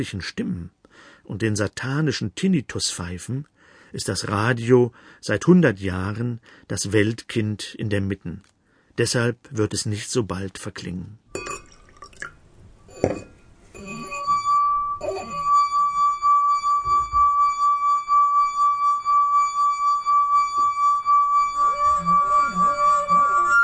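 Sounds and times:
speech: 0.0 - 11.3
light clinks and taps on a wine glass: 11.3 - 12.3, 12.9 - 15.5, 16.8 - 17.4
singing tone from a rubbed wine glass rim: 11.3 - 23.6.

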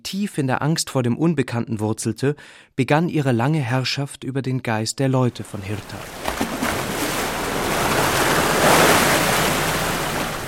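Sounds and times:
speech: 0.1 - 6.6
heavy Atlantic swell washing over a jetty: 5.4 - 10.4.

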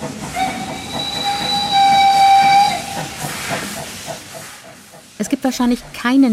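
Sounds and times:
steam train rumbling along the rails chuffing: 0.0 - 6.3
long steam whistle: 0.4 - 3.1
speech: 5.2 - 6.3.

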